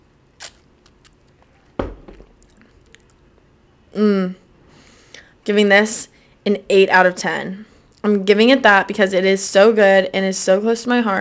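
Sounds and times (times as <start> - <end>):
wet mouth sounds from sipping stout beer: 0.4 - 1.3
beer glass clunk: 1.8 - 2.4
speech: 3.9 - 4.4, 5.5 - 11.1.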